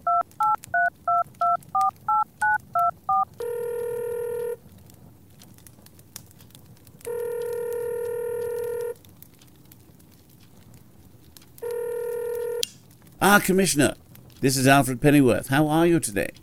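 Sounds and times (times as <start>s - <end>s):
cell phone keypad dialing beeps: 0.0s - 4.6s, 7.1s - 9.0s
cell phone ringing tone: 0.0s - 4.6s, 7.1s - 9.0s, 11.6s - 12.7s
speech: 13.2s - 16.4s.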